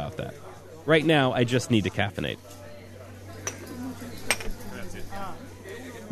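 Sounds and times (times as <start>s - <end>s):
indistinct chatter at a busy coffee house bar in Rome: 0.0s - 6.0s
speech: 0.2s - 2.6s
china cups clinking at a coffee house bar in Rome: 3.3s - 4.7s.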